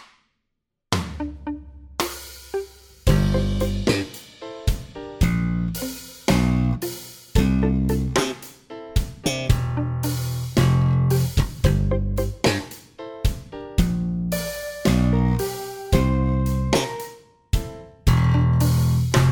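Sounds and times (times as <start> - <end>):
slow bass theme music: 0.9 - 4.2, 5.2 - 8.3, 9.3 - 12.7, 13.8 - 17.1, 18.1 - 19.2.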